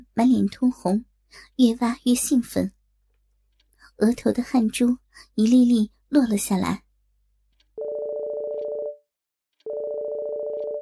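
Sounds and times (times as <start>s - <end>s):
speech: 0.2s - 2.8s, 4.0s - 6.8s
phone ringing with warbling electronic trill: 7.8s - 9.0s, 9.6s - 10.8s.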